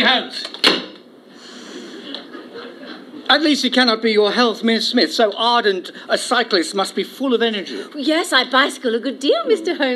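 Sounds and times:
door shutting with a sharp thud: 0.5s - 1.0s
laughter: 1.8s - 3.6s
speech: 3.3s - 9.9s.

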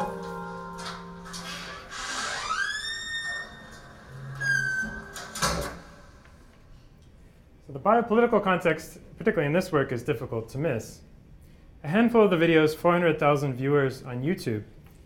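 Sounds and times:
door creaking and squeaking as it swings shut by itself: 0.1s - 6.5s
speech: 7.8s - 11.1s, 11.8s - 14.8s.

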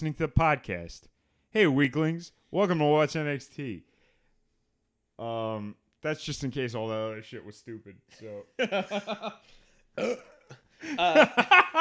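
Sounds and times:
speech: 0.0s - 3.9s, 5.2s - 11.7s
laughter: 8.6s - 9.5s, 10.8s - 11.7s
person burping: 10.0s - 11.2s.

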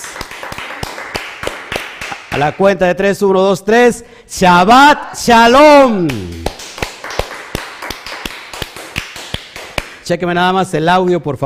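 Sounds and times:
hands clapping in applause: 0.0s - 2.6s, 6.0s - 10.1s
speech: 2.4s - 6.5s, 10.1s - 11.4s.

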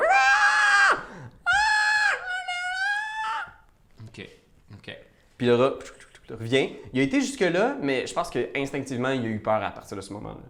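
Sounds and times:
person imitating a young woman screaming: 0.0s - 3.6s
speech: 4.8s - 10.4s.

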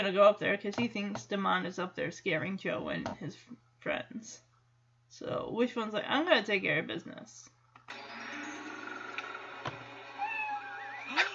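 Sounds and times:
speech: 0.0s - 4.5s, 5.1s - 8.1s
cat meowing: 10.2s - 11.3s.

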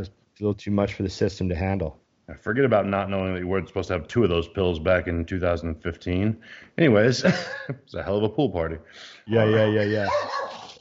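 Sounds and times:
speech: 0.0s - 10.8s
laughter: 7.1s - 7.9s
dog barking with a howling quality: 9.3s - 10.8s.

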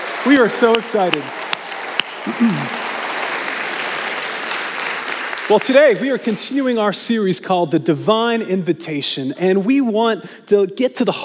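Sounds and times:
church congregation applauding: 0.0s - 6.8s
speech: 0.2s - 1.4s, 2.2s - 2.8s, 5.5s - 11.2s
brief vocal sound: 2.3s - 2.8s.

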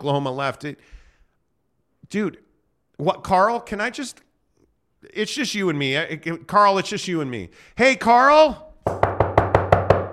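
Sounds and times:
speech: 0.0s - 1.0s, 2.1s - 4.3s, 5.0s - 9.0s
knocking on a door: 8.8s - 10.1s.

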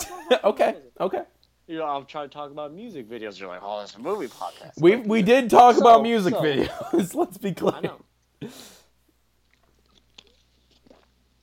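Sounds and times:
speech: 0.3s - 8.8s
person gulping a big drink: 9.4s - 11.4s.

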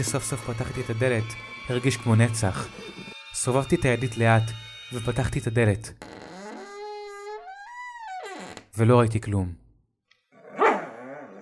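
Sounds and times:
speech: 0.0s - 6.3s, 8.8s - 9.6s
female bulldog barking and whining: 10.4s - 11.4s.

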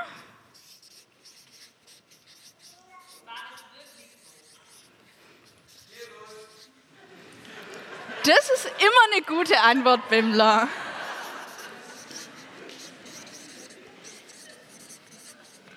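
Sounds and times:
pen writing on paper: 0.0s - 6.8s, 10.9s - 15.7s
laughter: 6.0s - 14.8s
speech: 8.3s - 8.5s, 9.2s - 10.8s.

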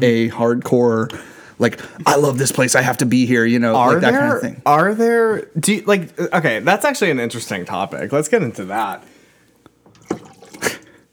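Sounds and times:
speech: 0.0s - 9.1s
faint dripping: 8.8s - 11.1s
liquid pouring and splashing while glasses are rinsed: 9.8s - 11.1s.

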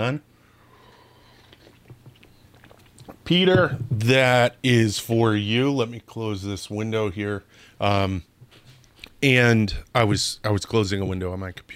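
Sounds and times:
speech: 0.0s - 0.3s, 3.3s - 8.3s, 9.2s - 11.7s
low hiss: 0.0s - 11.7s
person sipping coffee: 0.6s - 3.3s.

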